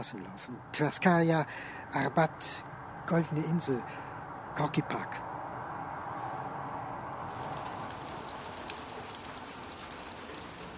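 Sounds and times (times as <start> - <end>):
speech: 0.0 - 5.3
rain pattering on surfaces: 7.2 - 10.7.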